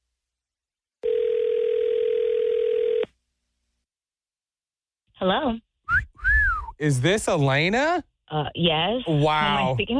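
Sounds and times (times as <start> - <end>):
electronic telephone ring tone: 1.0 - 3.1
speech: 5.2 - 6.0, 6.8 - 9.9.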